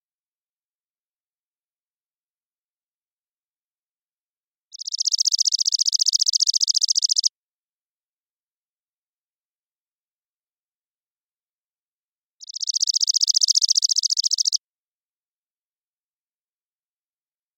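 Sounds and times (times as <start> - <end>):
chipping sparrow singing a fast dry mechanical trill: 4.7 - 7.3, 12.4 - 14.6.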